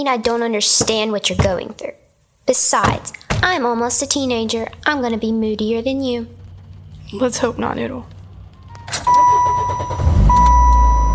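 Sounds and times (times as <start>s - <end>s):
speech: 0.0s - 6.4s, 7.1s - 8.2s
car engine cranking and starting in a driveway: 3.9s - 11.1s
continuous electronic dashboard tone: 8.6s - 11.1s.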